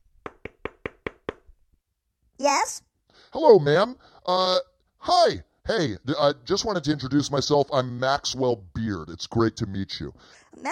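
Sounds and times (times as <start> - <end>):
knocking on a door: 0.2 - 1.5
speech: 2.4 - 10.7.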